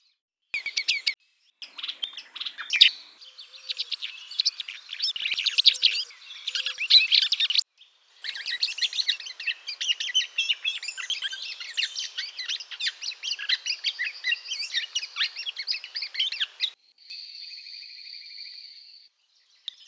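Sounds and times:
bird song chatter: 0.6s - 7.6s, 8.2s - 16.8s.

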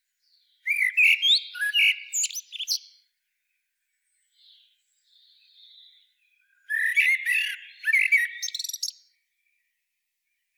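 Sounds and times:
common blackbird Turdus merula singing: 0.2s - 3.1s, 4.1s - 9.2s.

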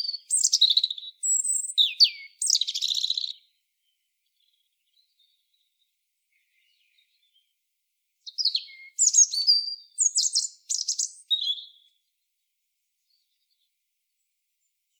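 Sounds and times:
European robin Erithacus rubecula song of warbled and trilled phrases: 0.0s - 12.2s.

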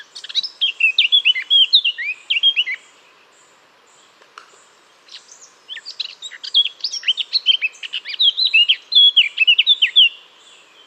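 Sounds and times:
Eurasian blackcap Sylvia atricapilla singing: 0.0s - 2.8s, 5.1s - 10.2s.

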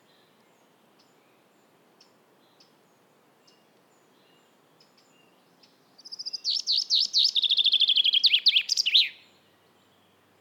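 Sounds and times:
common chaffinch Fringilla coelebs song: 5.7s - 9.3s.

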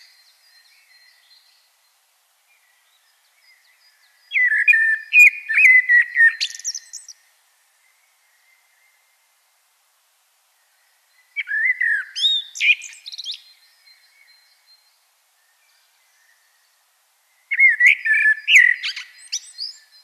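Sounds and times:
common blackbird Turdus merula singing: 0.0s - 1.7s, 2.5s - 7.2s, 10.7s - 20.0s.

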